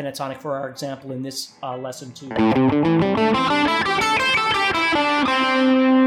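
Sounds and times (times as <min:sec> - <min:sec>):
speech: 0:00.0 - 0:05.4
distorted electric guitar playing plucked notes and a sustained note on the fifth fret of the third string: 0:02.3 - 0:06.0.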